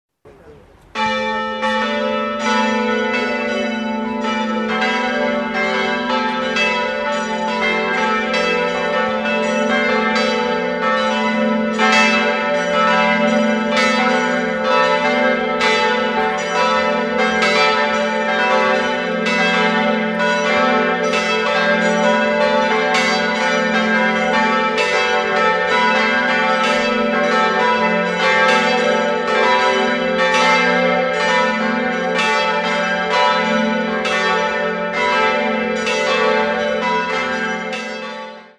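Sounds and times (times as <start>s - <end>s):
funeral bells: 0.7s - 38.5s.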